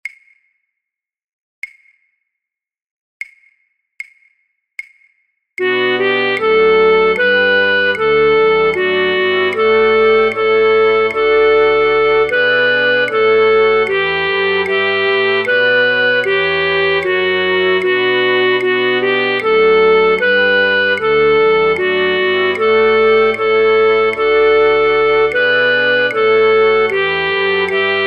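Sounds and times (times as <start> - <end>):
flute choir: 5.6 - 28.0.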